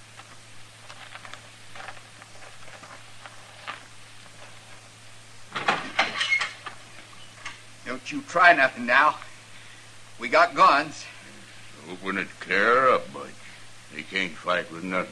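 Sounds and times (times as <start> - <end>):
footsteps of someone approaching: 0.0 - 5.6
steady low hum: 0.0 - 15.1
speech: 8.0 - 9.2, 10.2 - 11.1, 11.9 - 15.1.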